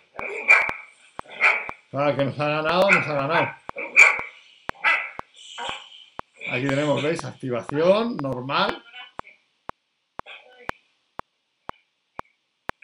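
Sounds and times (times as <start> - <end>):
dog barking: 0.2 - 1.8, 2.7 - 6.0
speech: 1.9 - 3.6, 6.5 - 8.9.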